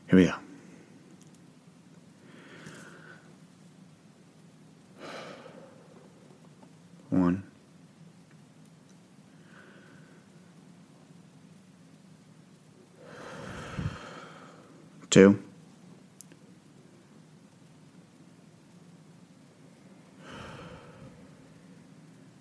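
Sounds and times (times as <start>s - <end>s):
speech: 0.1s - 0.4s, 15.1s - 15.4s
slow deep breaths taken as a relaxation exercise: 2.2s - 3.4s, 5.0s - 6.4s, 9.3s - 10.6s, 13.0s - 14.9s, 20.2s - 21.6s.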